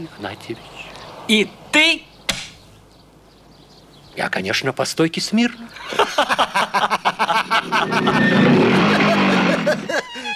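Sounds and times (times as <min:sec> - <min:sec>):
speech: 0:00.0 - 0:02.1, 0:04.2 - 0:10.3
laughter: 0:05.8 - 0:10.3
motorcycle braking to a stop outside a house: 0:07.7 - 0:09.9.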